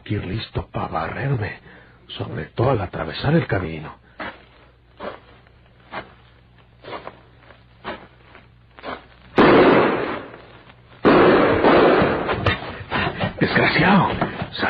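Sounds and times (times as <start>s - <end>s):
speech: 0.1s - 4.0s, 13.8s - 14.6s
gunshots fired at a man's head: 9.4s - 10.4s, 11.0s - 14.1s
loud gun blasts with rumbling roar: 9.4s - 10.4s, 11.0s - 12.7s.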